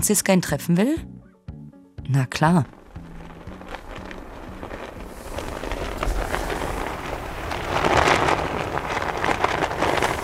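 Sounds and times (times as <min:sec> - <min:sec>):
speech: 0:00.0 - 0:01.2, 0:02.1 - 0:02.8
large fabric flag flapping in strong wind: 0:02.6 - 0:10.2
strong wind roaring: 0:02.6 - 0:10.2.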